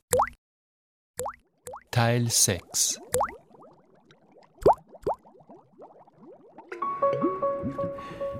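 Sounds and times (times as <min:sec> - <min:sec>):
sharp plops: 0:01.2 - 0:01.9, 0:03.0 - 0:06.8
water bubbling: 0:01.2 - 0:08.3
speech: 0:02.0 - 0:03.4
wet squishing and gurgling: 0:03.0 - 0:06.8.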